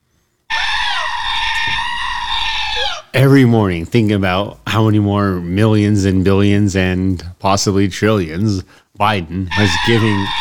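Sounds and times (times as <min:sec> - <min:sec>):
goat screaming: 0:00.5 - 0:03.2, 0:09.5 - 0:10.3
speech: 0:03.1 - 0:10.3.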